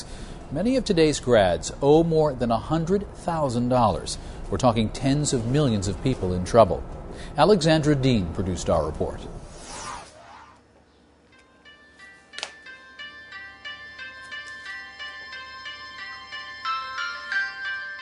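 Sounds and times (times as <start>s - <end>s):
speech: 0.5s - 9.4s
telephone ringing with a bright tinkly melodic ringtone: 11.4s - 18.0s.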